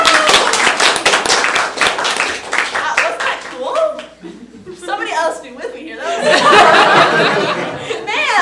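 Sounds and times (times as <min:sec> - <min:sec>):
audience applause after a performance: 0:00.0 - 0:03.6
laughter: 0:06.0 - 0:08.3.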